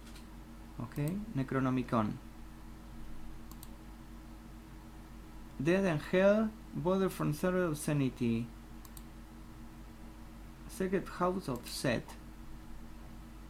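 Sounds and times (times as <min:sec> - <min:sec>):
low hum: 0:00.0 - 0:13.4
speech: 0:00.8 - 0:02.3, 0:05.6 - 0:08.6, 0:10.8 - 0:12.2
computer mouse clicks: 0:03.5 - 0:03.8, 0:08.8 - 0:09.1.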